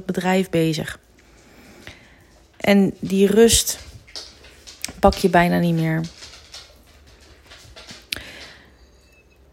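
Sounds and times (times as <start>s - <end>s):
speech: 0.0s - 1.1s, 2.6s - 4.3s, 5.0s - 6.2s
dogs' claws clicking on a laminate floor: 3.8s - 8.6s.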